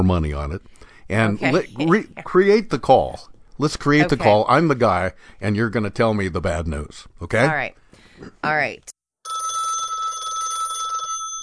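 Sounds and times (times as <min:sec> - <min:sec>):
speech: 0:00.0 - 0:09.4
telephone ringing with a warbling electronic tone: 0:09.2 - 0:11.4.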